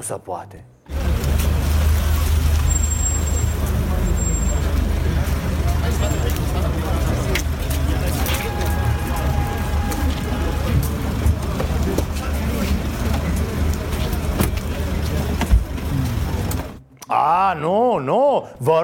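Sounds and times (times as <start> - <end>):
speech: 0.0 - 0.8, 17.1 - 18.8
road noise: 0.8 - 17.4
German car engine rumbling as the car pulls in: 0.9 - 16.8
voices: 3.5 - 16.8.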